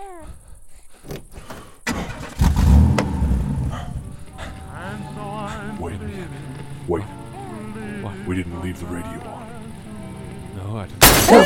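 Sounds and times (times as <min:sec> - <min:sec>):
car engine cranking, catching and revving: 0:01.8 - 0:04.6
speech: 0:08.7 - 0:09.4, 0:10.8 - 0:11.4.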